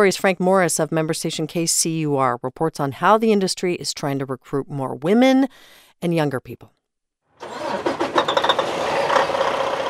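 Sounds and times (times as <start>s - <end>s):
speech: 0.0s - 6.8s
truck engine cranking and idling on a packed gravel lot near a truck stop in southwest Iowa: 7.4s - 9.8s.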